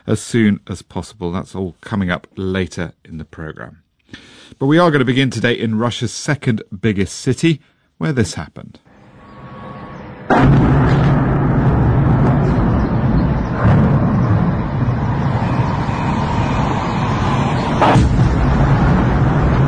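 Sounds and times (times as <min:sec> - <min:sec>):
speech: 0:00.1 - 0:08.9
continuous low rumbling roar: 0:08.9 - 0:19.6
drones striking targets and exploding in heavy dull blasts: 0:10.3 - 0:19.6.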